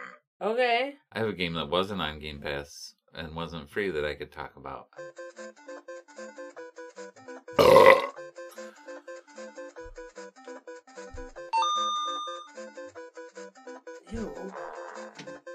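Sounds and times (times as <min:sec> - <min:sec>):
speech: 0:00.4 - 0:05.7
loud raspy burp: 0:07.6 - 0:08.2
bright sustained bell-like chime: 0:11.6 - 0:12.5.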